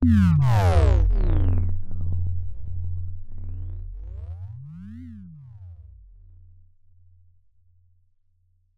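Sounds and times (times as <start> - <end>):
FM synth sound: 0.0 - 6.8.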